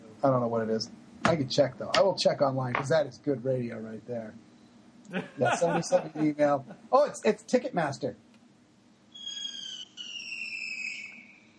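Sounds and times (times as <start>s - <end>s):
speech: 0.2s - 4.5s, 5.1s - 8.2s
laughter: 5.1s - 7.1s
shrill whistling fireworks screeching outside: 9.2s - 11.5s.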